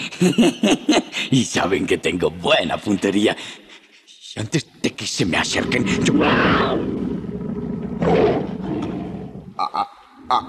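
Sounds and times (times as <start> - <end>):
speech: 0.1 - 3.6, 4.4 - 7.1, 9.6 - 10.4
tiger roaring and growling: 5.4 - 9.6.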